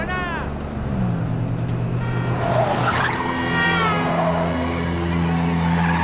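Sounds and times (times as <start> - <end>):
car engine roaring: 0.0 - 6.0
tires squealing: 1.9 - 6.0.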